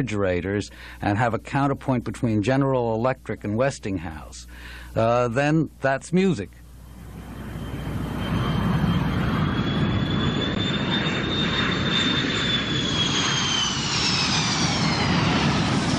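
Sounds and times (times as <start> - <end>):
speech: 0.0 - 6.6
jet airplane roaring overhead: 6.8 - 15.9.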